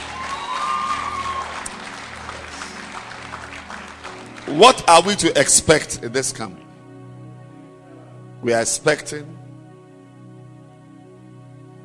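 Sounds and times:
audience at a religious camp gathering clapping: 0.0 - 5.3
speech: 4.5 - 6.6, 8.4 - 9.4.

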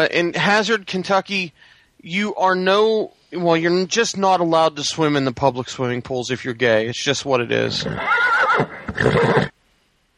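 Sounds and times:
speech: 0.0 - 9.6
horse neighing: 7.7 - 9.6.

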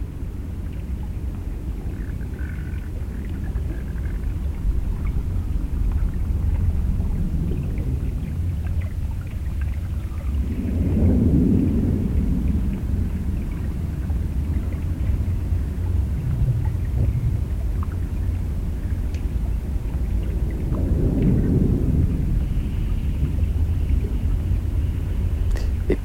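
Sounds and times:
muffled low rumble of a city heard from underwater: 0.0 - 26.0.

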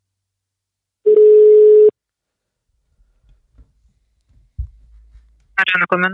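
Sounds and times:
steady telephone tone while dialing: 1.1 - 1.9
faint low thumps and clicks: 3.0 - 5.6
speech: 5.7 - 6.1.

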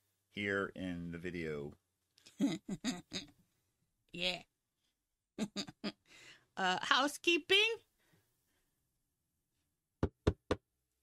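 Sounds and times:
speech: 0.4 - 1.8, 2.4 - 3.4, 4.1 - 4.5, 5.4 - 7.8
sharp knocks on a wooden surface: 10.0 - 10.6.

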